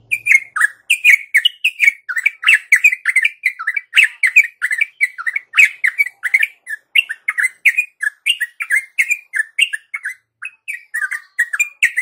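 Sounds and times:
yellow-vented bulbul song in tembakan style: 0.0s - 12.0s.

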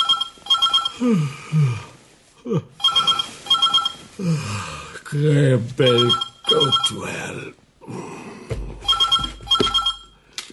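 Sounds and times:
telephone bell ringing: 0.0s - 1.0s, 2.8s - 4.1s, 5.8s - 7.1s, 8.8s - 10.2s
speech: 1.0s - 3.0s, 4.2s - 8.0s.

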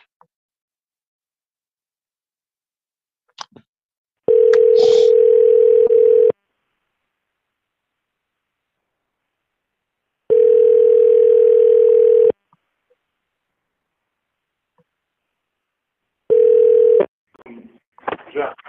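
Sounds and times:
telephone dial tone before a phone call: 4.3s - 6.4s, 10.3s - 12.4s, 16.3s - 17.1s.

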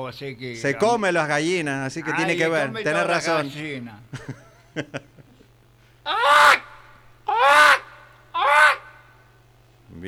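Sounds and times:
speech: 0.0s - 5.1s
laughter: 4.1s - 5.5s
voice imitating a fox with harsh drawn-out yelping calls: 6.1s - 9.0s.

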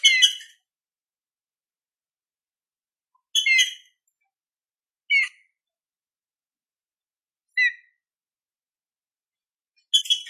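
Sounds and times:
green-winged saltator song in classic style: 0.0s - 0.6s, 3.2s - 4.0s, 7.5s - 8.0s, 9.9s - 10.2s.

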